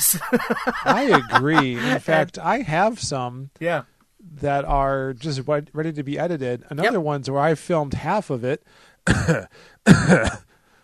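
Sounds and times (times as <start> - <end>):
laughter: 0.0 - 2.3
speech: 0.0 - 10.5
throat clearing in rough raspy bursts: 9.1 - 10.5.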